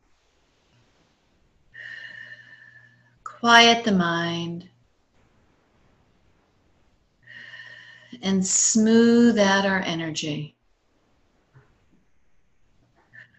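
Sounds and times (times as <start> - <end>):
deep breathing in through nose and out through mouth: 1.6 - 3.3, 7.1 - 8.2
speech: 3.4 - 4.7, 8.2 - 10.6.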